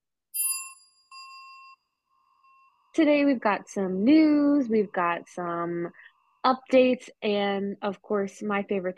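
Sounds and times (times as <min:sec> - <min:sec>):
steadier chime tone: 0:00.3 - 0:03.0
bright ringing notification ding: 0:00.4 - 0:02.8
speech: 0:03.0 - 0:08.9.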